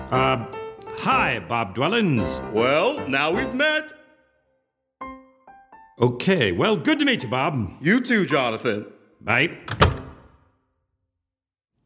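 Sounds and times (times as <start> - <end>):
speech: 0.1 - 4.0, 6.0 - 9.9
door shutting: 9.6 - 10.4.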